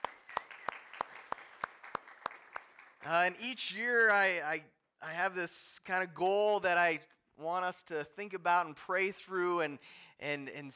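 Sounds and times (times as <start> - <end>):
sharp claps: 0.0 - 3.2
speech: 3.0 - 10.7.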